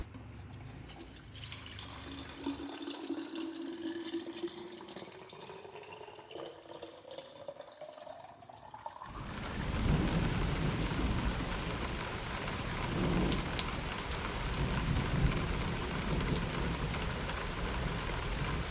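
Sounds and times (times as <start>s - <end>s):
water running from a tap into a container: 0.8s - 18.7s.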